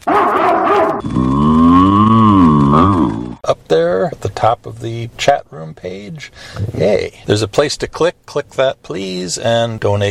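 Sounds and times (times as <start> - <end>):
cow mooing: 0.1 - 3.4
speech: 4.1 - 10.0.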